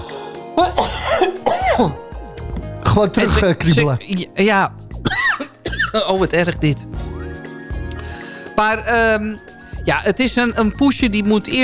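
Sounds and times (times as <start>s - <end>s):
speech: 0.6s - 2.0s, 2.9s - 4.8s, 5.9s - 6.9s, 8.6s - 11.6s
tickly cough: 0.6s - 2.0s, 5.0s - 6.1s.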